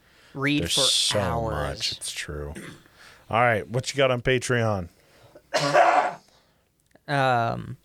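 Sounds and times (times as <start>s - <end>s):
speech: 0.4s - 5.9s, 7.1s - 7.8s
harsh loud coughs: 2.6s - 2.9s, 5.5s - 6.2s.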